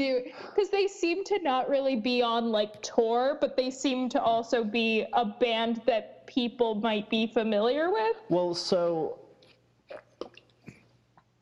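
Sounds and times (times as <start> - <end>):
speech: 0.0 - 9.2
soft wet mouth clicks from sipping a drink: 9.4 - 10.8
swallowing a drink: 9.9 - 10.9.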